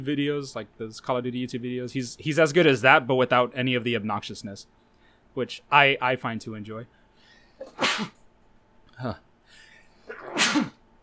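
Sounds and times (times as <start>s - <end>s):
speech: 0.0s - 4.8s, 5.4s - 7.0s, 7.6s - 8.2s, 9.0s - 9.3s
loud sneezes: 7.6s - 8.2s, 10.1s - 10.8s.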